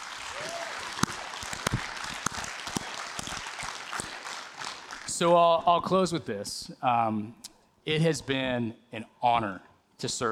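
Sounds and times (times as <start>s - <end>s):
crowd applauding: 0.0s - 5.2s
sharper louder claps: 0.0s - 5.2s
speech: 5.2s - 10.3s.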